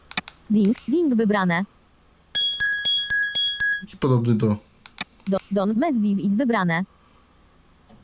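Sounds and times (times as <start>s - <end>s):
speech: 0.5s - 1.8s, 4.0s - 4.7s, 5.3s - 7.0s
mobile phone ringtone with bright glassy chiming tones: 2.4s - 3.9s.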